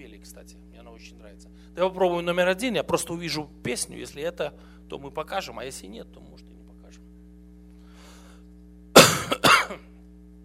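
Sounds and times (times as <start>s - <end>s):
speech: 0.0s - 6.5s
low steady hum: 0.0s - 10.4s
loud cough into a phone receiver: 9.0s - 9.9s.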